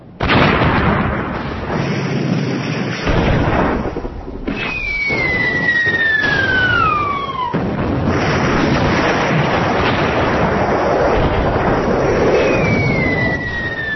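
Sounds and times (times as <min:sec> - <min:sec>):
artillery shell explosions in a barrage: 0:00.0 - 0:13.9
incoming artillery shells whistling overhead: 0:04.5 - 0:07.6, 0:12.1 - 0:13.9.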